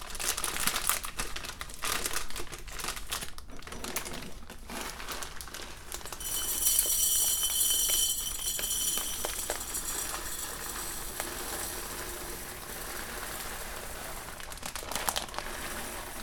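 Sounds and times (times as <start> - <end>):
taped-up plastic bag of coffee crinkling while handled: 0.1 - 16.2.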